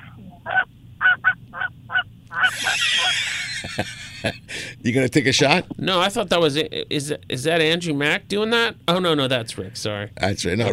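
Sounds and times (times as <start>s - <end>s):
flock of geese honking as it flies in: 0.0s - 3.4s
laughter: 2.4s - 4.8s
speech: 3.7s - 10.7s.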